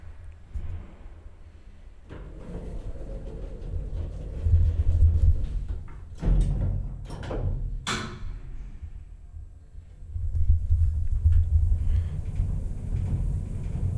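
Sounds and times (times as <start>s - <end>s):
elevator motor rumble while descending to a courtyard: 2.0s - 7.6s, 10.1s - 13.9s
elevator mechanical clanks and rattles: 2.0s - 8.7s, 10.4s - 13.9s.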